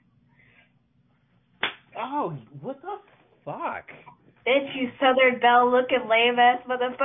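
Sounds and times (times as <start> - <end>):
faint low hum: 0.0 - 7.0
sharp slap: 1.6 - 1.9
speech: 2.0 - 7.0.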